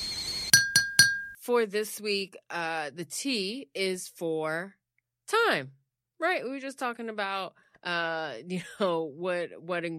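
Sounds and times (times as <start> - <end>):
glasses or cups clinking together in a toast: 0.5 - 1.4
speech: 1.5 - 9.9.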